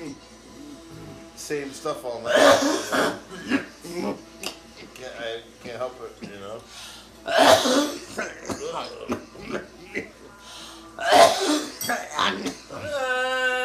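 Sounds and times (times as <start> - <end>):
speech: 1.5 - 4.3, 5.3 - 9.6
person coughing in harsh fits: 2.3 - 4.2, 7.3 - 10.1, 11.0 - 12.6.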